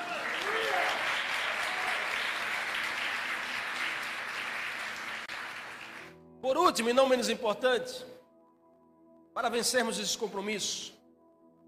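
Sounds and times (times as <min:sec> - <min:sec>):
large audience applauding: 0:00.0 - 0:06.2
speech: 0:06.4 - 0:08.1, 0:09.4 - 0:11.0.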